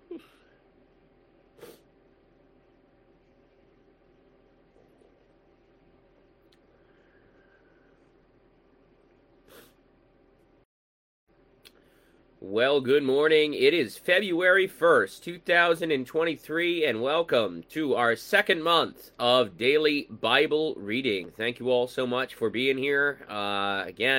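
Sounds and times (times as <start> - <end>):
sneeze: 1.6 - 1.9
speech: 12.5 - 24.1.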